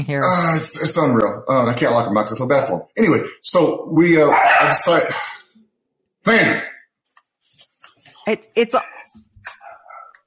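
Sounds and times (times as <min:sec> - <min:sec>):
speech: 0:00.0 - 0:05.4, 0:06.2 - 0:06.7, 0:08.3 - 0:08.9
dog barking at a bush outside: 0:04.3 - 0:05.3, 0:09.6 - 0:10.2.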